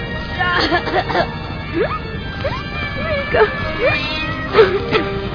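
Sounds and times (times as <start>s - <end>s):
laughter: 0.5s - 2.0s, 4.4s - 5.2s
short rising-and-falling cat meows: 1.7s - 5.0s.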